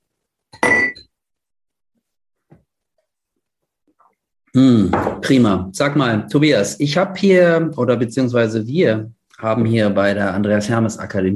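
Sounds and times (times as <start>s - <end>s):
glasses clinking in a toast: 0.6s - 1.1s
speech: 4.0s - 11.3s.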